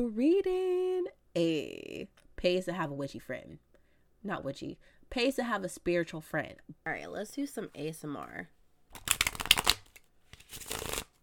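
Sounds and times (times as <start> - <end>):
speech: 0.0 - 0.8, 1.4 - 9.1
deck of tarot cards being shuffled: 8.9 - 11.2.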